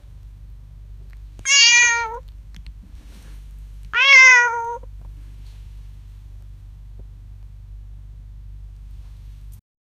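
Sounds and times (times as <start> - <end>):
tiny kitten meowing: 1.4 - 2.2, 3.9 - 4.8.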